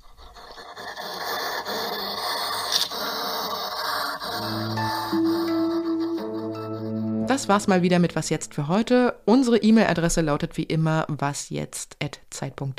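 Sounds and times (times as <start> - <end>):
hedgehog huffing or coughing angrily: 0.3 - 7.1
low steady hum: 4.4 - 10.3
speech: 7.3 - 12.7.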